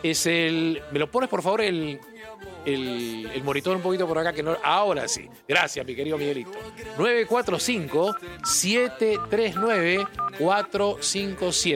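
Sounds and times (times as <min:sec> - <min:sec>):
speech: 0:00.0 - 0:11.7
telephone keypad dialing tones as a phone number is entered: 0:08.1 - 0:10.7.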